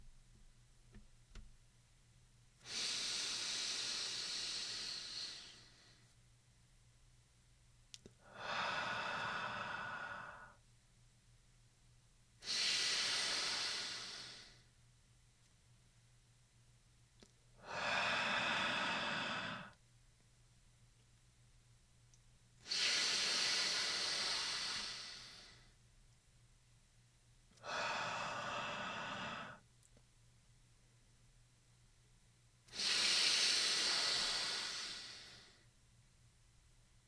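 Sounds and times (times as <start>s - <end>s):
person breathing slowly and deeply during a stretching exercise: 2.6s - 6.1s, 8.2s - 10.6s, 12.4s - 14.7s, 17.6s - 19.8s, 22.6s - 25.7s, 27.6s - 29.6s, 32.7s - 35.7s.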